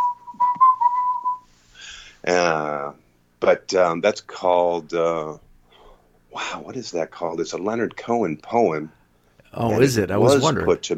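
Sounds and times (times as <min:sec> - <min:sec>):
person whistling a short melodic phrase: 0:00.0 - 0:01.5
speech: 0:02.2 - 0:05.4, 0:06.3 - 0:10.9.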